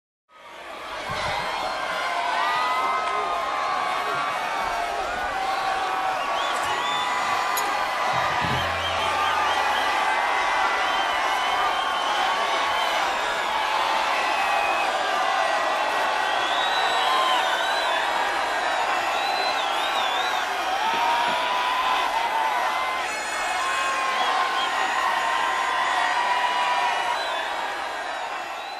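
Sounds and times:
crowd cheering: 0:00.3 - 0:28.7
crowd chanting: 0:04.0 - 0:17.8.

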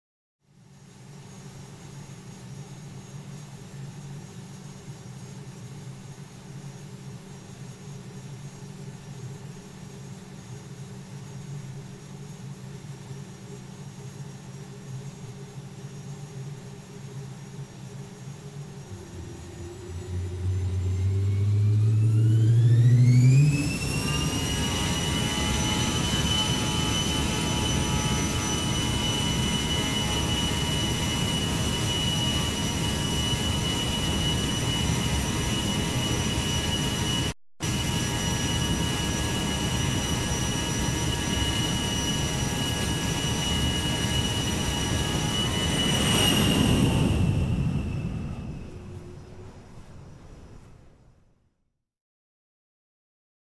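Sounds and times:
airplane taking off: 0:17.4 - 0:51.3.

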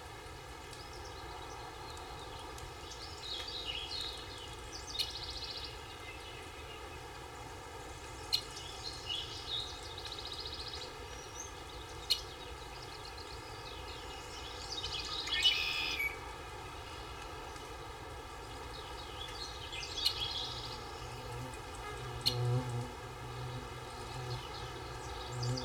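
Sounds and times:
birds in a forest: 0:00.7 - 0:25.6.

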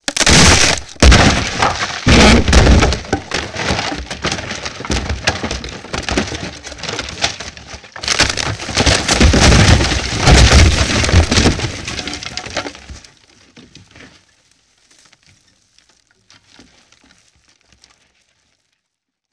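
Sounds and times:
wood shattering: 0:00.0 - 0:13.0.

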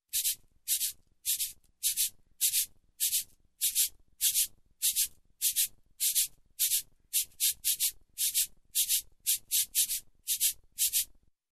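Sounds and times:
cabasa groove: 0:00.1 - 0:11.0.

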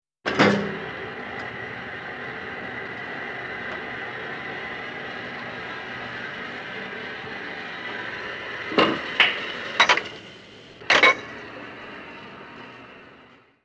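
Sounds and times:
industrial machine running: 0:00.3 - 0:13.6.

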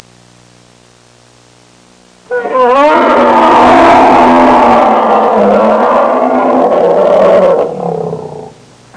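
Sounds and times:
caged feline roaring: 0:02.3 - 0:08.6.

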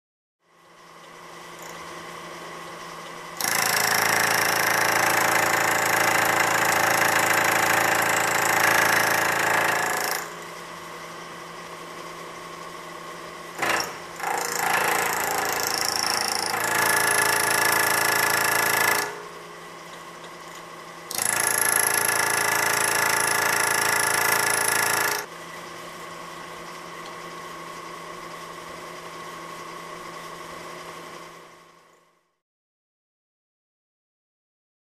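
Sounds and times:
industrial drilling machine: 0:01.5 - 0:10.7, 0:13.5 - 0:19.5, 0:20.4 - 0:25.3.

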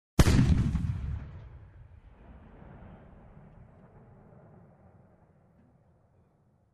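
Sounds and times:
boomy shotgun shot: 0:00.2 - 0:01.6.

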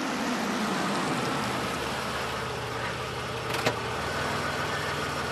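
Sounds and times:
car engine shutting off: 0:00.2 - 0:05.3
car parking: 0:01.5 - 0:05.3.

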